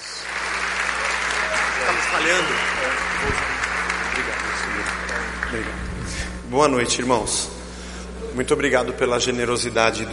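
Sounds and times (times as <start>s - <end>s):
dense audience applause of many hands clapping: 0.0s - 5.9s
speech: 2.2s - 3.6s, 5.5s - 5.9s, 6.5s - 7.6s, 8.4s - 10.1s.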